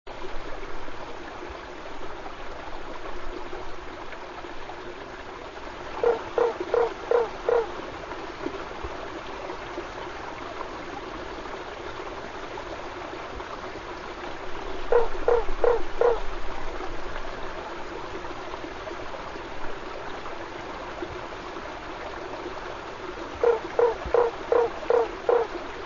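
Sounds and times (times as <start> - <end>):
Boana lundii tree frog: 6.0 - 7.8, 14.8 - 16.3, 23.3 - 25.6.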